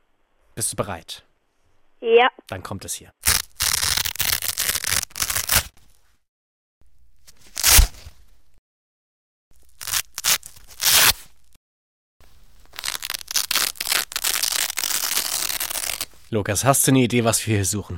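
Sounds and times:
speech: 0:00.6 - 0:01.3, 0:02.0 - 0:03.3, 0:16.3 - 0:17.9
Velcro strap on a shoe being ripped open: 0:03.2 - 0:05.8, 0:07.3 - 0:08.2, 0:09.6 - 0:11.6, 0:12.6 - 0:16.2.

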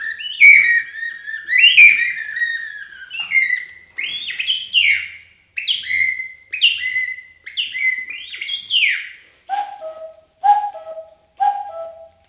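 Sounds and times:
birds chirping and whistling: 0:00.0 - 0:12.2.

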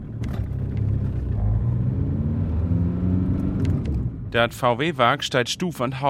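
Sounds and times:
cars driving past at a harbour pier at the Ems estuary in East Frisia: 0:00.4 - 0:04.3
speech: 0:04.3 - 0:06.0.

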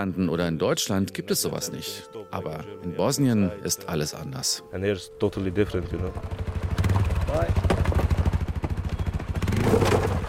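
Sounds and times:
speech: 0:00.0 - 0:07.8
motorcycle engines revving and rattling: 0:05.3 - 0:10.2.

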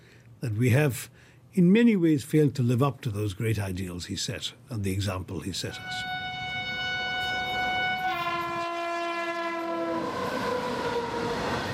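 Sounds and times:
speech: 0:00.4 - 0:06.2
train horn blasts at a railway station in Gujarat, western India: 0:05.7 - 0:11.7
rumble of rail cars at a railway station in Gujarat, western India: 0:05.8 - 0:11.7.

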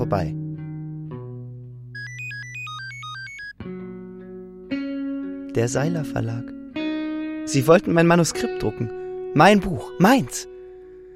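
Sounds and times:
speech: 0:00.1 - 0:00.4, 0:05.6 - 0:06.6, 0:07.5 - 0:10.5
telephone ringing with a bright repeating electronic melody: 0:02.0 - 0:03.6.

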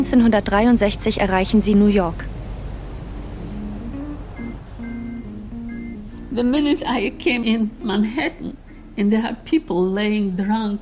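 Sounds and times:
speech: 0:00.0 - 0:02.4, 0:06.4 - 0:10.7
low engine-like rumble from a passenger ship: 0:00.0 - 0:10.7
sea waves around a passenger ship gliding toward New York: 0:01.9 - 0:07.2
soft slow melody of sustained tones: 0:03.1 - 0:10.4.

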